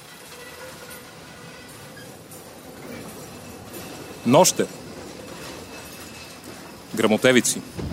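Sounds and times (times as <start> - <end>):
mine carts clattering along the track in a mine between Aytos and Burgas, Bulgaria: 0.0 - 7.9
faint squeals of mine carts: 0.2 - 7.0
speech: 4.2 - 4.8, 7.0 - 7.9.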